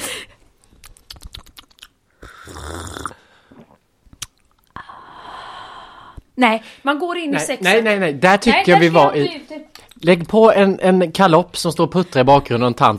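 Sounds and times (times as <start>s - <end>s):
small clicks and mouth sounds: 0.8s - 4.8s
wet slurping sips of coffee from a cup: 2.2s - 3.8s
speech: 6.4s - 12.9s.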